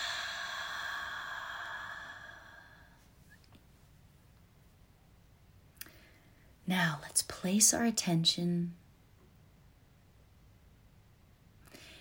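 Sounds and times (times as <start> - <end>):
slow deep breath released during a guided relaxation exercise: 0.0 - 3.4, 11.7 - 11.9
speech: 6.7 - 8.8.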